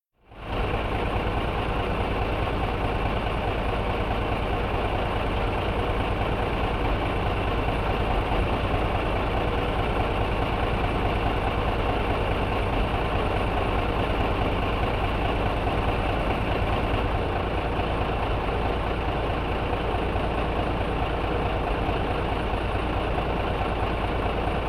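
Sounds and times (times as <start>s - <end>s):
stationary tractor engine running: 0.3s - 24.6s.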